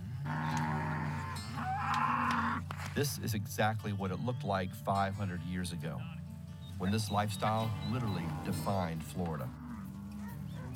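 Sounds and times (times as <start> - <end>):
cattle herd mooing in Florida: 0.0 - 2.7, 6.8 - 10.7
speech: 3.0 - 6.2, 6.8 - 9.6.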